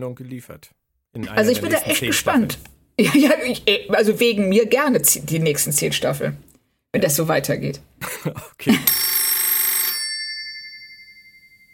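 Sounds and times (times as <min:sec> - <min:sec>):
speech: 0:00.0 - 0:09.0
laughter: 0:01.2 - 0:03.6, 0:08.0 - 0:08.9
telephone bell ringing: 0:08.8 - 0:11.7.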